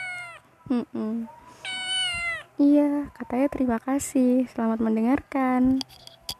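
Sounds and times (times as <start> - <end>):
domestic cat meowing: 0.0 - 0.5, 1.3 - 2.6
speech: 0.7 - 1.4, 2.6 - 6.1.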